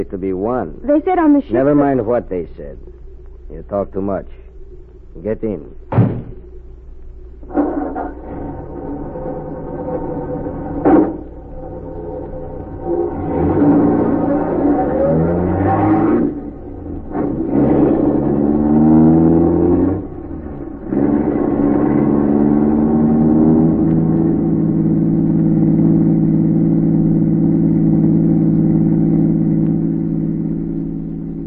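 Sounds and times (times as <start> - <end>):
speech: 0.0 - 4.4, 5.2 - 6.2
car engine revving as the car pulls away: 7.4 - 31.4.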